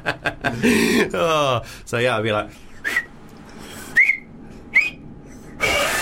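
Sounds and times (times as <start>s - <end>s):
speech: 0.0s - 2.7s
failed finger whistle squeaks: 2.8s - 3.1s, 3.9s - 5.0s
spitty blown air: 2.8s - 5.9s.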